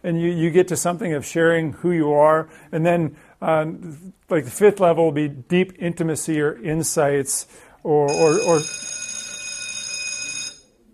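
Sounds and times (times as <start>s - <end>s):
speech: 0.0s - 9.0s
bell ringing: 8.1s - 10.7s.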